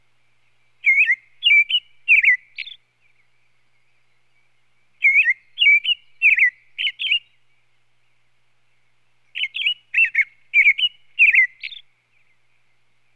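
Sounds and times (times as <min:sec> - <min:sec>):
American robin caroling warbled whistled phrases: 0:00.8 - 0:02.8, 0:05.0 - 0:07.4, 0:09.3 - 0:12.3.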